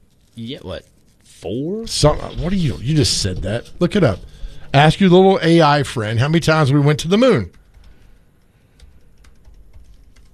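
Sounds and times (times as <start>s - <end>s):
low hum: 0.0s - 10.3s
speech: 0.4s - 7.6s
typing on a computer keyboard: 7.5s - 10.3s.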